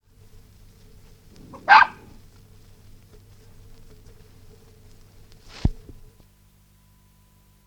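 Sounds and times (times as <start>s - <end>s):
Maltese terrier barking: 1.3s - 2.2s.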